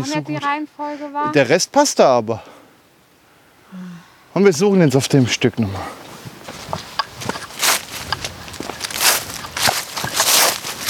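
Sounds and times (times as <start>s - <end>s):
speech: 0.0s - 2.5s, 3.7s - 6.0s
footsteps of people walking along a wooded path: 6.1s - 10.8s.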